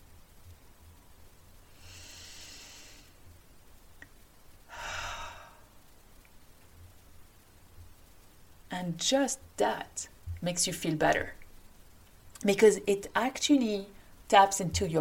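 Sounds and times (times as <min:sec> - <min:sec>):
deep breath: 0:01.7 - 0:03.2, 0:04.7 - 0:05.8
speech: 0:08.7 - 0:11.4, 0:12.4 - 0:14.9.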